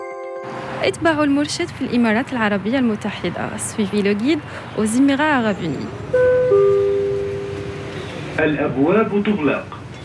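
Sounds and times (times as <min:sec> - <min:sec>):
speech: 0:00.8 - 0:06.2, 0:08.4 - 0:09.8
moving metro train interior hum in Dubai: 0:05.2 - 0:09.6
electronic chime tones as metro train doors close: 0:06.1 - 0:08.0.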